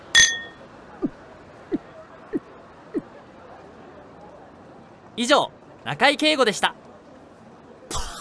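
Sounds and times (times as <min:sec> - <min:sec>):
glasses clinking in a toast: 0:00.1 - 0:00.6
speech: 0:05.2 - 0:06.8.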